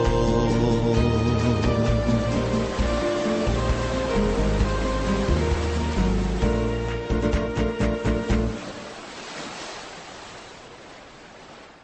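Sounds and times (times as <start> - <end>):
sustained slowly shifting musical chords: 0.0 - 8.6
ocean waves washing onto the shore: 0.0 - 11.8.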